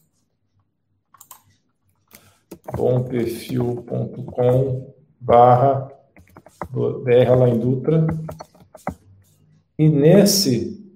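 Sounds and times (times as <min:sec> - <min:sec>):
computer keyboard typing: 0:01.2 - 0:01.6, 0:02.4 - 0:04.8, 0:06.2 - 0:09.1
speech: 0:02.7 - 0:06.0, 0:06.6 - 0:08.9, 0:09.8 - 0:10.8.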